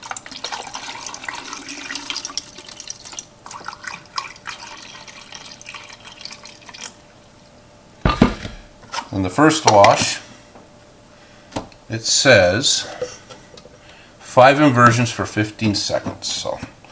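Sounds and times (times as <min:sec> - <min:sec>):
tap water pouring into a beaker: 0:00.0 - 0:07.0
speech: 0:09.2 - 0:10.2, 0:11.9 - 0:13.1, 0:14.4 - 0:16.7.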